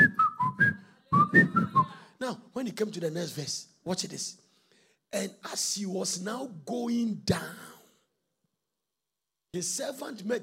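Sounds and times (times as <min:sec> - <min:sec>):
person whistling a short melodic phrase: 0:00.0 - 0:01.9
speech: 0:02.7 - 0:04.4, 0:05.1 - 0:07.7, 0:09.5 - 0:10.4.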